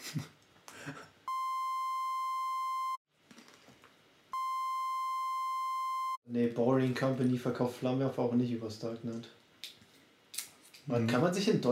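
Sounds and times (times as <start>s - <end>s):
censorship bleeps: 1.3s - 3.0s, 4.4s - 6.2s
speech: 6.4s - 9.4s, 10.9s - 11.7s.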